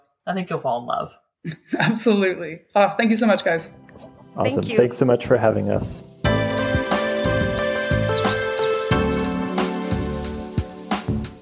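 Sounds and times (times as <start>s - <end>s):
speech: 0.2s - 6.2s
chimney swift calls: 6.3s - 9.4s
loud musical backing: 6.3s - 11.3s.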